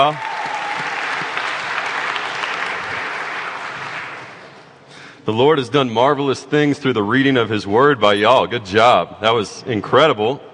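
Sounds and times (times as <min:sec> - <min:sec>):
speech: 0:00.0 - 0:00.9, 0:05.3 - 0:10.5
room full of people clapping: 0:00.0 - 0:04.7.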